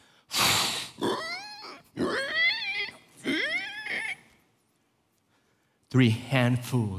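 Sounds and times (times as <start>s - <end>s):
pigs grunting and squealing while being fed: 0.9s - 4.3s
speech: 6.0s - 6.9s.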